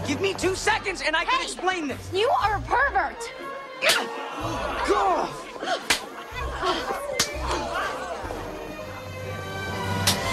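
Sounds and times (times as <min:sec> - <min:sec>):
speech: 0:00.1 - 0:05.9
sharp loud slaps to a man's face: 0:03.8 - 0:04.1, 0:05.8 - 0:06.1, 0:07.2 - 0:07.4, 0:10.0 - 0:10.3
laughter: 0:04.0 - 0:09.1.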